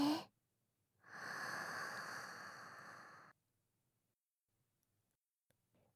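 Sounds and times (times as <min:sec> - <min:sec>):
deep breath drawn in through the nose: 0:01.1 - 0:03.3.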